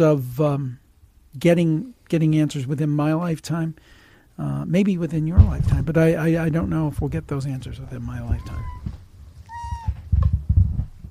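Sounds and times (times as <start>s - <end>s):
speech: 0.0s - 8.8s
rustling noise: 5.1s - 11.0s
low thumps: 5.2s - 11.0s
cat giving a short clear meow: 8.3s - 10.0s.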